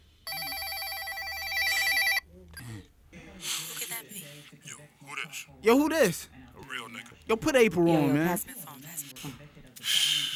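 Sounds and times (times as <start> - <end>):
telephone ringing with a warbling electronic tone: 0.0 - 2.7
voices: 1.9 - 10.3
speech: 5.2 - 8.6.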